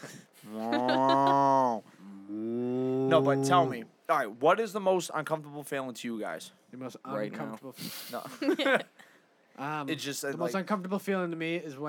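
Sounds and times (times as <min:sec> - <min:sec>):
speech: 0:00.0 - 0:00.8, 0:03.1 - 0:09.0, 0:09.6 - 0:11.8
laughter: 0:00.4 - 0:01.8, 0:08.2 - 0:08.9
cow mooing: 0:00.6 - 0:03.8.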